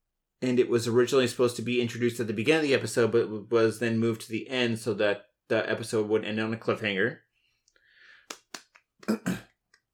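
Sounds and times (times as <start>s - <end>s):
speech: 0.4s - 7.2s, 9.0s - 9.5s
soft hand claps: 8.2s - 9.2s.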